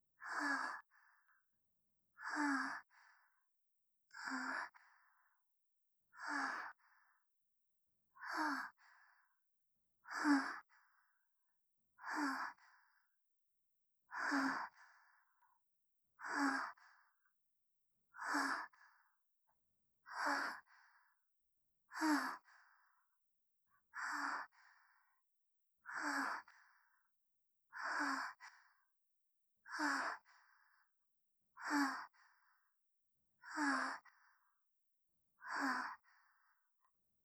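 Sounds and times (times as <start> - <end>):
breath: 0.2 - 1.4, 2.2 - 3.4, 4.1 - 5.4, 6.1 - 7.3, 8.2 - 9.4, 12.0 - 13.0, 14.1 - 15.5, 16.2 - 17.2, 18.2 - 19.1, 20.1 - 21.2, 21.9 - 23.0, 24.0 - 25.1, 25.8 - 27.0, 27.7 - 28.8, 29.7 - 30.9, 31.6 - 32.7, 33.4 - 34.5, 35.4 - 36.7.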